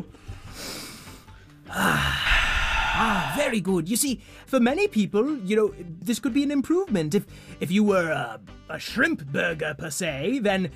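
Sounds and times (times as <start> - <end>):
deep breath: 0.1 - 3.5
speech: 3.4 - 10.7.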